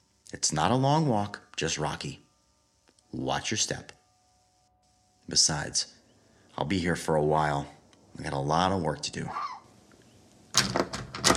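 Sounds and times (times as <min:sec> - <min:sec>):
speech: 0:00.3 - 0:02.2, 0:03.1 - 0:04.0, 0:05.3 - 0:06.0, 0:06.6 - 0:09.5
door rattled against deadbolt lock: 0:10.6 - 0:11.3.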